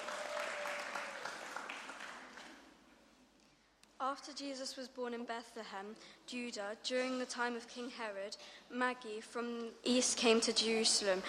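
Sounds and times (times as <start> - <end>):
audience applauding for readers: 0.0 - 2.7
speech: 4.0 - 11.2.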